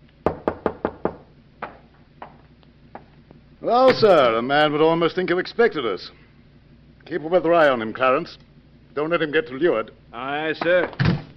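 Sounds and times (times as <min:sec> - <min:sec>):
firm knocking on a door: 0:00.2 - 0:01.8
speech: 0:03.6 - 0:06.2, 0:07.1 - 0:08.4, 0:09.0 - 0:11.1.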